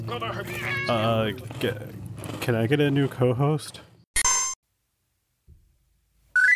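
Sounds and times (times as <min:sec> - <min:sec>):
speech: 0:00.1 - 0:03.9
cat meowing: 0:00.5 - 0:01.1.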